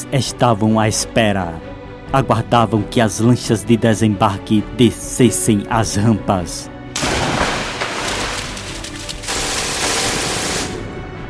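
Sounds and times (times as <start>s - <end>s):
speech: 0.1s - 6.7s
dense continuous machine gun fire in rapid bursts: 7.0s - 10.8s.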